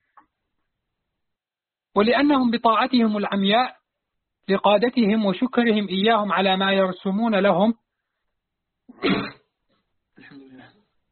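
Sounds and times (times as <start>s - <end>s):
speech: 2.0s - 3.8s, 4.5s - 7.8s
sneeze: 8.9s - 9.5s.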